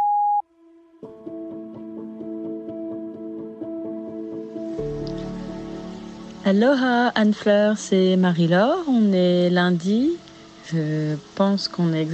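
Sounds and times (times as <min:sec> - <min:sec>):
voicemail beep tone: 0:00.0 - 0:00.4
rhythmic plucked-sounding music: 0:00.8 - 0:09.5
speech: 0:06.4 - 0:12.1.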